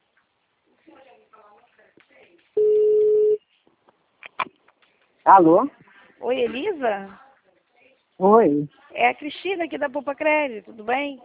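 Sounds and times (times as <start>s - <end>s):
telephone dialing tones while placing a call: 2.6s - 3.4s
speech: 5.3s - 7.2s, 8.2s - 11.2s.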